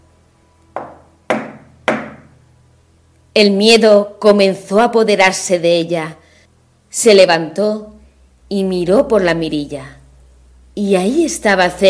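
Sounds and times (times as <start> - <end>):
firm knocks on a wooden door: 0.8 - 2.3
speech: 3.4 - 6.2, 6.9 - 10.0, 10.8 - 11.8.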